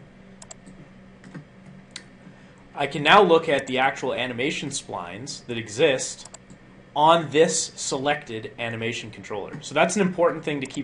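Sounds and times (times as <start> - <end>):
faint steady hum: 0.0 - 10.8
computer keyboard key presses for a shortcut: 0.4 - 1.4
speech: 2.8 - 6.3, 7.0 - 10.8.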